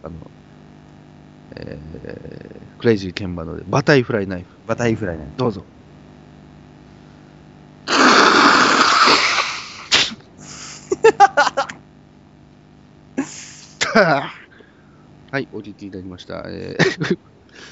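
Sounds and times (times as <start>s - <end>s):
speech: 0.0s - 0.3s, 1.6s - 5.8s, 14.0s - 14.4s, 15.3s - 17.3s
person blowing nose in a loud honk: 7.9s - 10.9s
short bursts of laughter: 10.7s - 11.8s, 16.8s - 17.2s.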